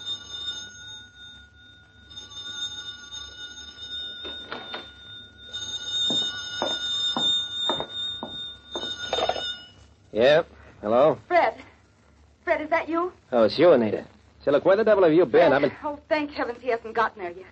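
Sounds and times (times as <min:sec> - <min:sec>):
old-fashioned telephone bell ringing in a suburban home: 0:00.0 - 0:10.0
speech: 0:10.2 - 0:11.3, 0:12.8 - 0:17.5.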